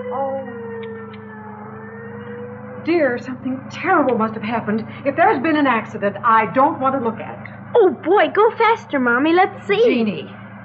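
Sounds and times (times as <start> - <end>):
police car siren wailing: 0.0 - 8.7
speech: 2.8 - 10.4.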